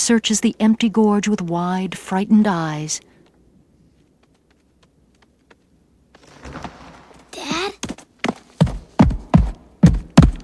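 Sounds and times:
speech: 0.0s - 3.1s
hoofbeats of a single wildebeest galloping away in a dusty gorge: 3.9s - 10.4s.

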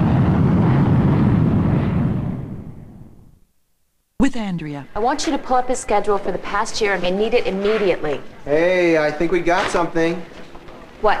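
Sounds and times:
airplane flying through the night sky: 0.0s - 3.3s
speech: 4.2s - 10.4s, 11.0s - 11.1s.

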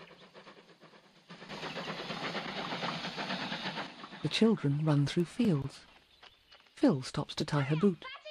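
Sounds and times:
steam train puffing through countryside: 0.0s - 4.4s
speech: 4.2s - 5.9s, 6.8s - 8.2s.

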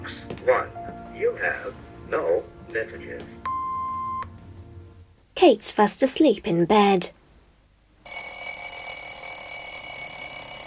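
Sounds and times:
speech: 0.4s - 3.4s, 5.4s - 7.2s
alarm clock ringing: 8.0s - 10.6s.

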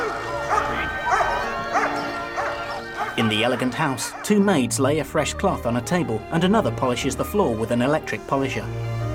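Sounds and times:
Alsatian dog on a lead barking outside a tenement building: 0.0s - 4.3s
speech: 3.2s - 9.0s.

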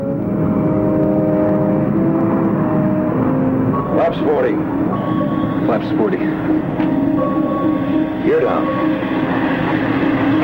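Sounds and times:
passenger airliner engine roar approaching the runway to land: 0.0s - 10.4s
speech: 5.7s - 7.3s.

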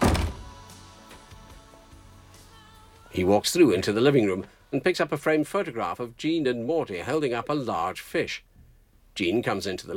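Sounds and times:
front door being shut: 0.0s - 0.6s
speech: 3.2s - 8.5s, 9.2s - 9.9s.

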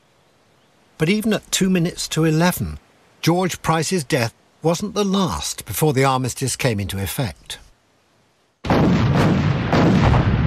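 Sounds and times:
speech: 1.0s - 7.6s
cannon and tank fire explosions: 8.6s - 10.4s.

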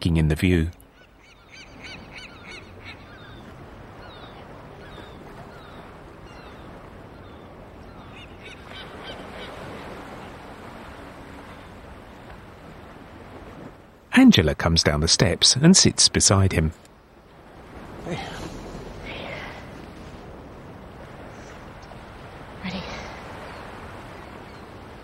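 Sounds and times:
speech: 0.0s - 0.8s, 14.3s - 16.9s
gull calls over harbour water: 0.9s - 9.8s
loud wash of harbour water: 8.7s - 25.0s.

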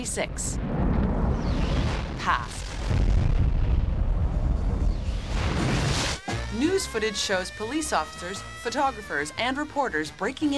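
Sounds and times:
speech: 0.0s - 0.9s, 2.2s - 3.0s, 6.6s - 10.5s
cartoon bomb exploding with a sustained rumbling blast: 0.6s - 7.6s.

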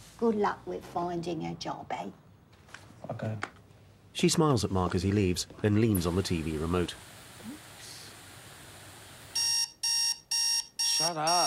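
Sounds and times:
speech: 0.2s - 2.2s, 3.1s - 3.6s, 4.2s - 7.6s, 11.1s - 11.4s
electronic alarm clock shrill beeping: 9.4s - 11.4s.

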